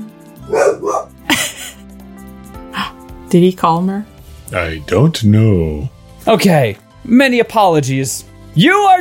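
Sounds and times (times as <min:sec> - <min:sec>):
dog barking: 0:00.5 - 0:01.2
speech: 0:03.3 - 0:09.0.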